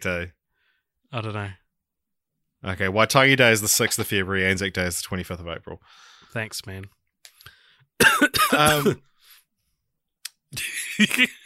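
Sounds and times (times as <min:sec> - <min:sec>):
speech: 0:00.0 - 0:00.4, 0:01.1 - 0:01.6, 0:02.6 - 0:07.0, 0:08.0 - 0:09.1, 0:10.5 - 0:11.4
person coughing: 0:08.0 - 0:09.0.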